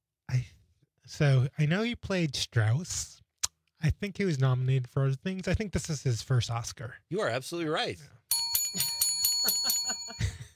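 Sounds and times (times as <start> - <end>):
speech: 1.1 - 3.2, 3.8 - 8.9
thin feeble tinny bell dinging: 8.3 - 10.5.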